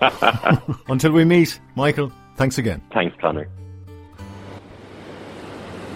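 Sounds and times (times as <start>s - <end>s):
laughter: 0.0s - 0.9s
speech: 0.0s - 3.6s
low tonal hum: 3.9s - 5.9s
sea waves breaking on shore: 4.2s - 5.9s.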